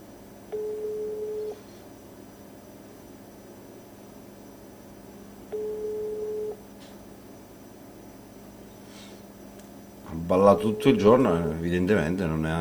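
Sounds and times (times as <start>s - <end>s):
telephone ringback tones of an unanswered call: 0.5s - 1.6s, 5.5s - 6.6s
speech: 10.3s - 12.5s.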